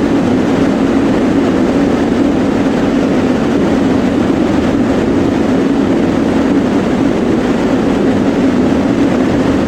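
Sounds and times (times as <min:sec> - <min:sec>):
wind in A-10 aircraft cockpit: 0:00.0 - 0:09.6.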